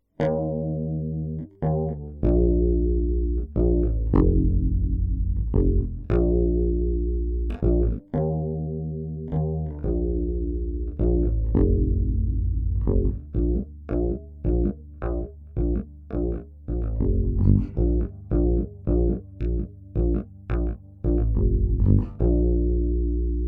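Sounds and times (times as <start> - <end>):
electric bass: 0.2 - 23.4.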